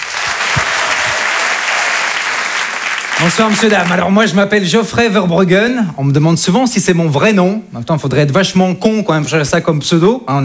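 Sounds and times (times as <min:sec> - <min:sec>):
audience applause at a comedy club: 0:00.0 - 0:04.1
speech: 0:03.2 - 0:10.4.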